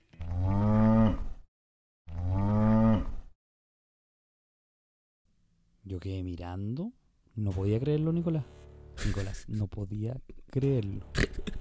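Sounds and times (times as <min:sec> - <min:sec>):
heifer mooing inside a pickup truck with a wooden enclosure: 0:00.2 - 0:01.4, 0:02.1 - 0:03.3
speech: 0:05.9 - 0:11.5.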